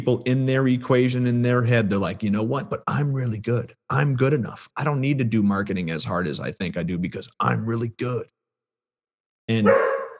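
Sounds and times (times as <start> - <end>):
speech: 0.0 - 8.4, 9.5 - 10.0
dog barking: 9.6 - 10.1.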